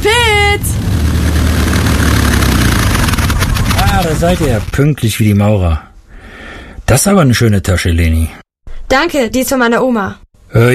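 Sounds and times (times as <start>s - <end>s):
small airplane taxiing after landing, engine at steady idle: 0.7s - 4.4s
speech: 4.1s - 5.9s, 6.9s - 10.7s.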